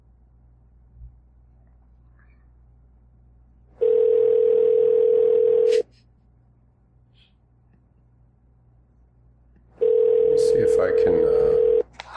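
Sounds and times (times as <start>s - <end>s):
telephone ringback tone on an outgoing call: 3.8s - 5.8s, 9.8s - 11.8s.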